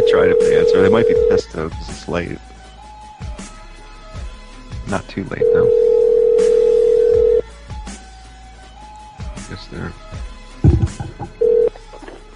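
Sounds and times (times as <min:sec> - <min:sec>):
telephone ringback tone: 0:00.0 - 0:01.4, 0:05.4 - 0:07.4, 0:11.4 - 0:11.8
speech: 0:00.1 - 0:02.6, 0:04.9 - 0:05.9, 0:09.5 - 0:10.3, 0:10.9 - 0:11.6
handling noise: 0:10.7 - 0:12.3.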